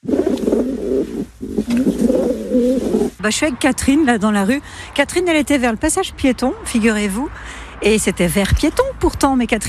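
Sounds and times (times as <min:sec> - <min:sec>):
pigeons cooing: 0:00.0 - 0:03.2
speech: 0:03.2 - 0:09.6.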